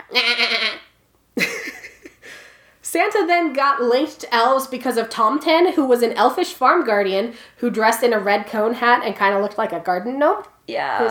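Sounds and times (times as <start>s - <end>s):
person imitating a goat with a wavering bleat: 0.0s - 0.9s
speech: 0.1s - 0.6s, 3.0s - 11.0s.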